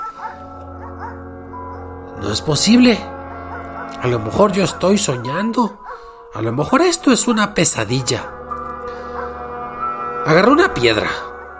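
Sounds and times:
dog barking: 0.0 - 1.8, 5.2 - 6.2, 8.9 - 9.5
steady low droning background: 0.0 - 11.5
speech: 2.2 - 3.2, 4.0 - 8.4, 10.3 - 11.3.

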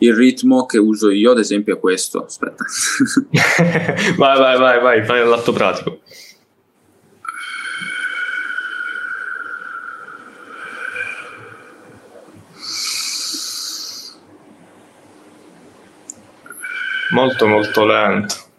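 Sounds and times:
speech: 0.0 - 6.2, 17.1 - 18.4
laughter: 2.5 - 4.2
slow deep breathing: 7.2 - 14.3, 16.4 - 18.1.

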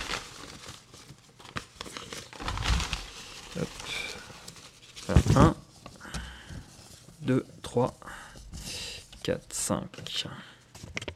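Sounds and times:
paper slips crinkling and rustling as they are drawn and unfolded: 0.0 - 6.0
speech: 3.6 - 4.0, 5.1 - 5.6, 7.3 - 8.0, 9.3 - 10.5.

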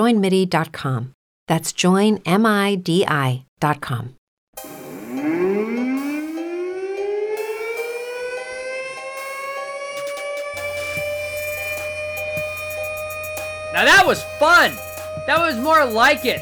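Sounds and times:
speech: 0.0 - 4.7, 13.8 - 16.4
siren sound effect wailing: 4.8 - 16.4.

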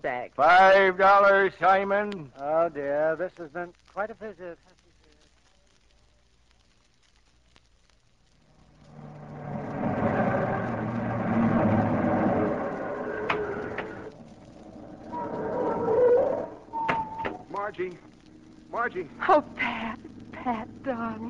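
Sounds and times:
speech: 0.0 - 4.7, 17.7 - 18.1, 18.7 - 21.2
car engine revving and rumbling as it drives away: 8.5 - 19.3.

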